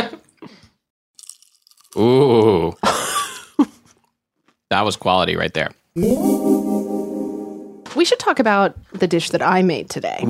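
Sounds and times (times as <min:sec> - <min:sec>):
chewing of thick crunchy chips: 0:01.2 - 0:02.9
speech: 0:02.0 - 0:02.8, 0:04.7 - 0:06.7, 0:08.0 - 0:10.2.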